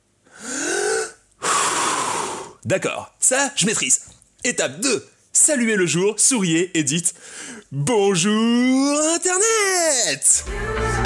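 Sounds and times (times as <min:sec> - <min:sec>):
breathing in and out: 0:00.2 - 0:02.6, 0:07.1 - 0:07.7
speech: 0:02.6 - 0:11.0.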